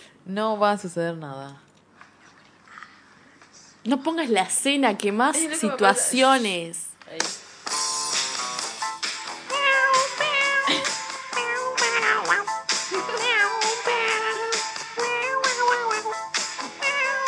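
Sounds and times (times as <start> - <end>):
speech: 0.3 - 1.7, 3.8 - 7.4
cat meowing: 9.5 - 17.2.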